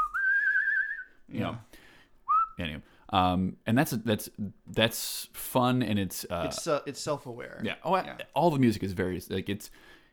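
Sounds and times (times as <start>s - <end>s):
person whistling one steady clear note: 0.0s - 1.2s, 2.3s - 2.6s
speech: 1.3s - 1.9s, 2.6s - 10.1s.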